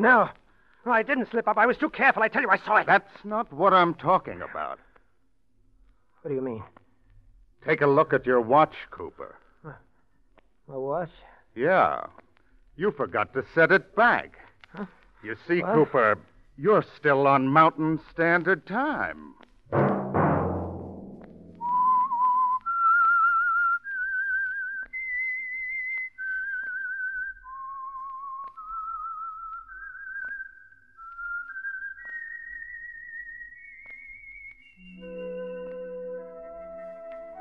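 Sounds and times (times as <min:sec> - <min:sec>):
speech: 0:00.0 - 0:04.9, 0:06.2 - 0:06.8, 0:07.6 - 0:09.8, 0:10.7 - 0:12.2, 0:12.8 - 0:19.9
whistled theme tune of a weekly radio program: 0:21.6 - 0:37.3
soft instrumental accompaniment: 0:34.8 - 0:37.3.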